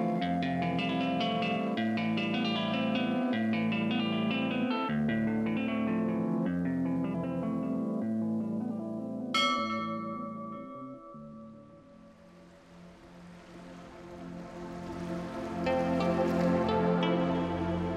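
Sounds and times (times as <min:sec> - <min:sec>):
mellow sustained tones: 0:00.0 - 0:17.9
soft ocean-like ambient wash: 0:00.0 - 0:17.9
small bell ringing: 0:09.4 - 0:11.8
bright chimes: 0:09.4 - 0:12.3.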